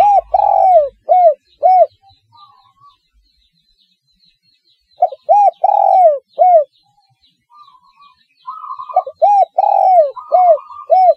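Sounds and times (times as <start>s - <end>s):
spotted dove giving deep arched coos: 0.0s - 2.5s, 5.0s - 6.7s, 8.5s - 11.1s.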